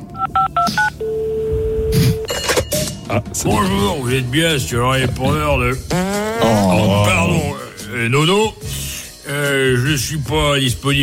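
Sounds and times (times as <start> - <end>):
telephone keypad dialing beeps: 0.2 - 2.3
speech: 3.1 - 11.0.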